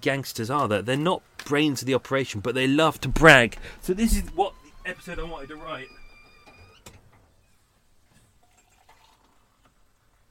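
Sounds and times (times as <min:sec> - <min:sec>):
speech: 0:00.0 - 0:06.0
water trickling and pouring into a container: 0:08.4 - 0:10.2.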